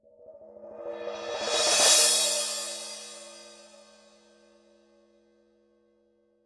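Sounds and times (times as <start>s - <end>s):
14-inch Paiste medium crash cymbal roll: 0.9s - 4.2s.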